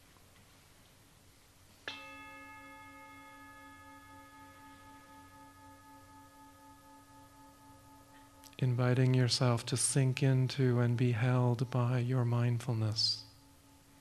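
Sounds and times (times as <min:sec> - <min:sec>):
meditation bell ringing: 0:01.8 - 0:13.9
speech: 0:08.6 - 0:13.2.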